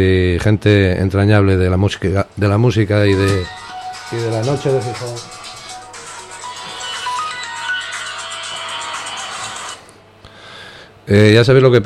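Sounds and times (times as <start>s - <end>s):
speech: 0.0s - 5.4s, 11.1s - 11.8s
low hum: 0.0s - 11.8s
mobile phone ringtone with a bright electronic melody: 3.1s - 9.9s.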